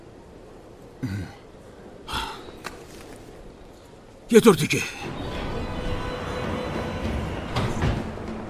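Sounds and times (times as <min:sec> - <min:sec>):
speech: 0:01.0 - 0:01.4, 0:04.3 - 0:05.2
train moving through with rail noise: 0:05.0 - 0:08.4.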